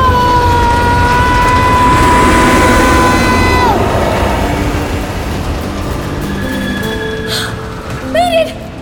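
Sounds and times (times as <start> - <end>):
rail car rushing along a winding track: 0.0 - 8.0
high metallic whine: 1.3 - 7.3.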